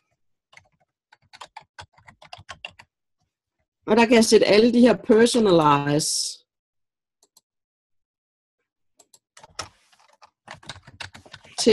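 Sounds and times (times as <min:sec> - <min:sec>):
fingers typing an email address and subject line on a computer keyboard: 0:00.5 - 0:02.9, 0:09.0 - 0:11.7
speech: 0:03.9 - 0:06.4.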